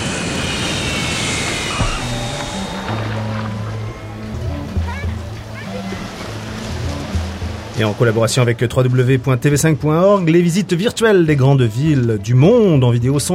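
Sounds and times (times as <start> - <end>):
airplane engine roar heard inside the cabin during approach to landing: 0.0 - 8.0
speech: 7.8 - 13.3.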